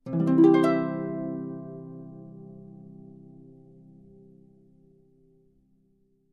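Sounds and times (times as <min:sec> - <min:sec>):
happy harp chord strum: 0:00.1 - 0:04.6.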